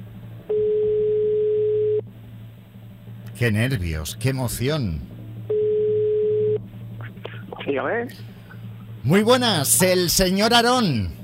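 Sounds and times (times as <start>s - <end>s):
faint phone line hum: 0.0s - 11.2s
telephone ringback tone over a phone line: 0.5s - 2.0s, 5.5s - 6.6s
speech: 3.4s - 5.1s, 7.7s - 8.3s, 9.0s - 11.2s.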